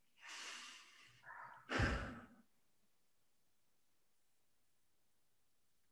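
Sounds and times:
person breathing slowly and calmly: 0.2s - 2.4s.

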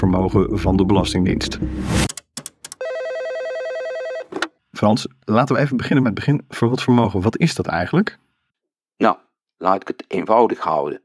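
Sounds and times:
speech: 0.0s - 2.1s, 4.8s - 8.2s, 9.0s - 11.0s
short bursts of telephone dialing tones: 2.6s - 4.3s
steady pulsing electronic telephone ring tone for an outgoing call: 2.8s - 4.4s.

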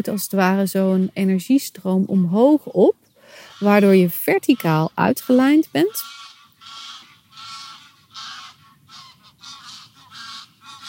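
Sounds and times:
speech: 0.0s - 3.0s, 3.6s - 6.2s
geese honking: 3.3s - 10.8s.

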